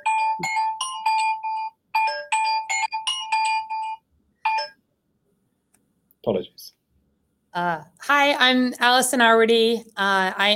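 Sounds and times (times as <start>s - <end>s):
mobile phone ringing with a melodic ringtone: 0.0s - 4.8s
speech: 6.3s - 6.8s, 7.6s - 10.5s.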